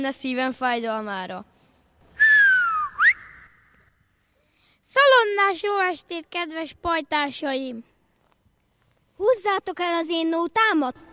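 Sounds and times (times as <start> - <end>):
speech: 0.0 - 1.5, 4.9 - 7.9, 9.2 - 11.1
shepherd's whistle sliding downward and flicking upward: 2.2 - 3.8.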